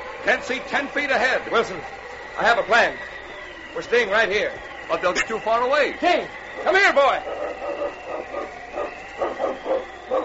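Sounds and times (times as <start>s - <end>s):
speech: 0.2s - 3.1s, 3.7s - 10.2s
sled dogs barking: 7.2s - 10.2s.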